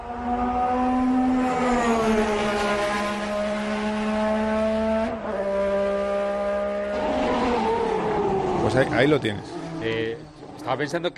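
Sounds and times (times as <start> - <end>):
1988 McLaren MP4-4 Formula One car engine howling and revving: 0.0 - 11.1
speech: 8.7 - 11.1.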